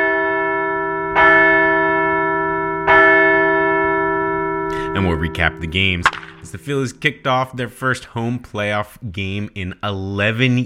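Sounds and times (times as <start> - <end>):
large bell ringing: 0.0 - 8.4
speech: 5.0 - 10.6.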